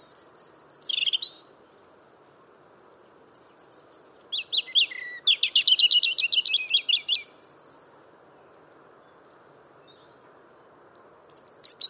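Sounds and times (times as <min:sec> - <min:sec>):
European robin whistled phrase and rapid trill: 0:00.0 - 0:01.9, 0:03.3 - 0:08.0, 0:11.0 - 0:11.8.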